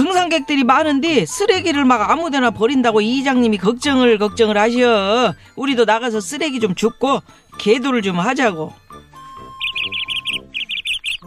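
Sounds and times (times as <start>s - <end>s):
speech: 0.2s - 8.8s
birds chirping in the mountains: 9.2s - 11.2s.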